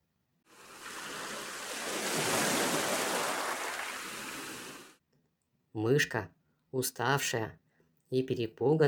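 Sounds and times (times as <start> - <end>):
single large ocean wave washing over the shore: 0.6 - 5.0
speech: 5.8 - 8.8.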